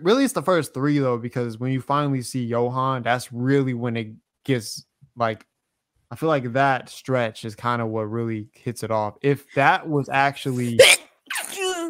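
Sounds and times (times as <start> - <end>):
speech: 0.0 - 5.5, 6.1 - 11.0
person sneezing: 10.5 - 11.8.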